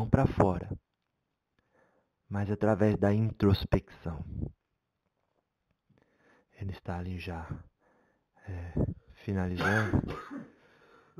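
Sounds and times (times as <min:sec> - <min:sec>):
speech: 0:00.0 - 0:00.8, 0:02.3 - 0:04.6, 0:06.6 - 0:07.7, 0:08.5 - 0:10.5
medium clearing his throat: 0:09.6 - 0:10.6
medium coughing during a recording session: 0:09.6 - 0:10.6.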